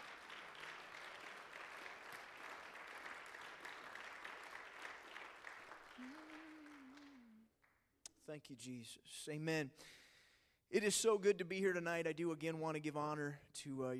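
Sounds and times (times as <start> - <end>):
audience clapping in sustained dense applause: 0.0 - 7.8
speech: 8.3 - 10.0, 10.7 - 13.9.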